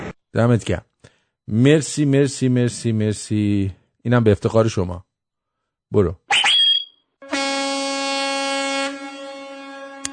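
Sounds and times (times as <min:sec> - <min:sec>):
speech: 0:00.4 - 0:00.9, 0:01.5 - 0:05.1, 0:05.9 - 0:06.2
car horn honking: 0:07.2 - 0:10.1.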